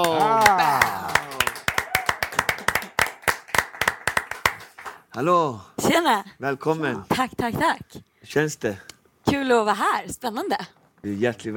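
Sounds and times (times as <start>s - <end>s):
small group applauding with brisk claps: 0.0s - 5.1s
speech: 5.2s - 11.5s.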